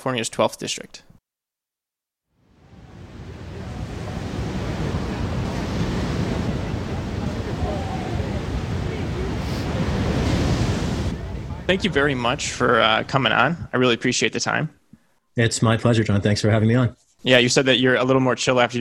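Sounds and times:
speech: 0:00.0 - 0:01.1, 0:11.7 - 0:14.8, 0:15.4 - 0:18.7
ocean waves rolling: 0:02.4 - 0:14.2.

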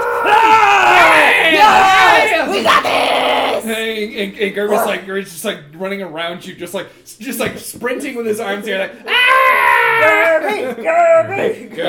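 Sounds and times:
group of people in a circle screaming and yelling: 0:00.0 - 0:03.6, 0:09.1 - 0:11.4
speech: 0:04.0 - 0:11.8.

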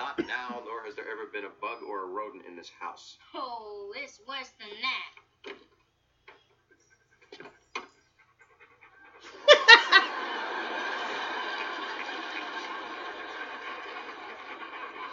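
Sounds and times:
laughter: 0:00.0 - 0:00.9, 0:09.0 - 0:15.1
speech: 0:00.2 - 0:05.7
several dogs panting: 0:06.5 - 0:10.0.

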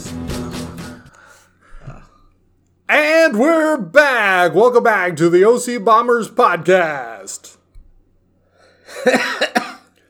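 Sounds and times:
speech: 0:03.0 - 0:07.6, 0:08.9 - 0:09.4
man coughing harshly: 0:08.9 - 0:10.0.

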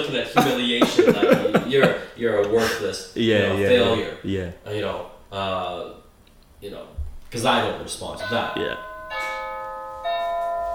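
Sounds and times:
laughter: 0:00.0 - 0:02.9
speech: 0:00.0 - 0:06.0, 0:06.6 - 0:08.9
doorbell chiming two-tone ding-dong: 0:08.2 - 0:10.7.

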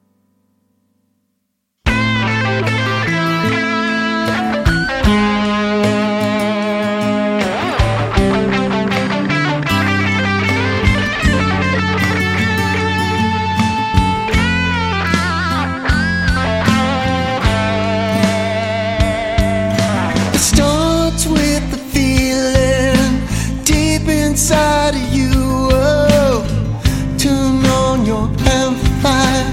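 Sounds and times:
full-band rock track with distorted electric guitar, drums and bass: 0:01.9 - 0:29.5.

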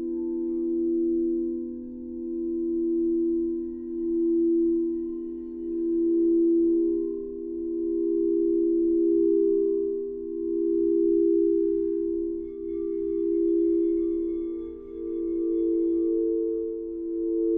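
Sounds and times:
singing bowl tones: 0:00.0 - 0:17.5.

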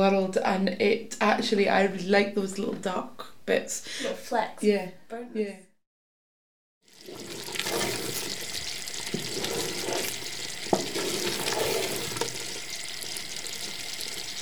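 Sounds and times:
speech: 0:00.0 - 0:05.7
condensed milk mixture sizzling and bubbling in a pan while stirred: 0:06.9 - 0:14.4
soft scraping while stirring condensed milk mixture in a pan: 0:07.2 - 0:12.8.

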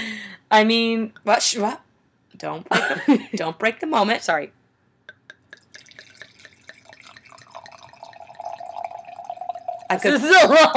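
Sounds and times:
speech: 0:00.5 - 0:01.8, 0:02.4 - 0:04.6, 0:09.9 - 0:10.7
wine pouring into a glass: 0:05.5 - 0:10.3.

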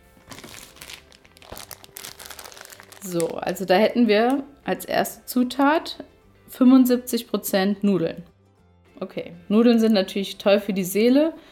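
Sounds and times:
plastic packet of instant chicken soup crinkling: 0:00.0 - 0:03.7
speech: 0:03.0 - 0:08.3, 0:09.0 - 0:11.5.

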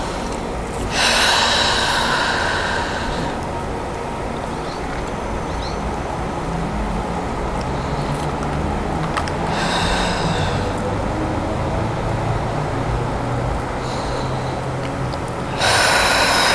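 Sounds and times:
deep breathing in and out during a yoga session: 0:00.0 - 0:04.0, 0:07.6 - 0:16.5
low noise: 0:00.0 - 0:16.5.

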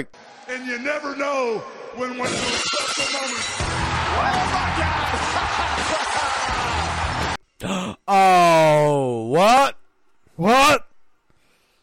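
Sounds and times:
speech: 0:00.0 - 0:09.8
glass shattering: 0:02.2 - 0:04.0.

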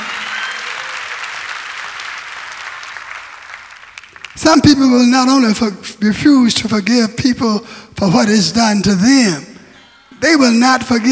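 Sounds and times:
audience clapping hands: 0:00.0 - 0:05.2, 0:10.4 - 0:11.1
speech: 0:04.4 - 0:09.5, 0:10.2 - 0:11.1.

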